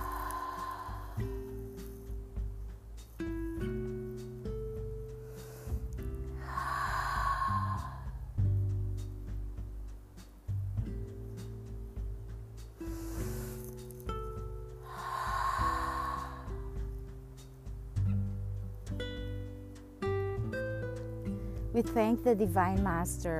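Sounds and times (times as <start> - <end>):
deep breath: 0.0 - 2.1, 5.2 - 8.3, 12.8 - 13.8, 14.8 - 17.0
soft music with sustained keyboard-like tones: 0.0 - 7.4, 8.4 - 23.3
speech: 21.8 - 23.3.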